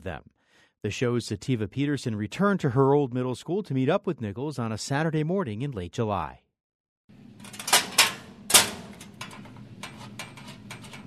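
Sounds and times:
speech: 0.0s - 6.4s
locker latch clacking: 7.4s - 11.0s.

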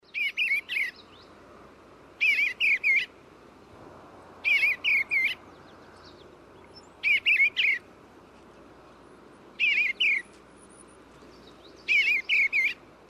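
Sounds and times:
eastern bluebird calls: 0.0s - 1.3s, 2.2s - 3.2s, 4.4s - 7.9s, 9.6s - 13.0s
faint background hiss: 0.0s - 13.0s.

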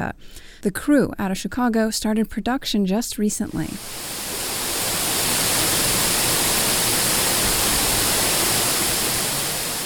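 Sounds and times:
speech: 0.1s - 4.2s
waterfall rushing: 3.5s - 9.8s.

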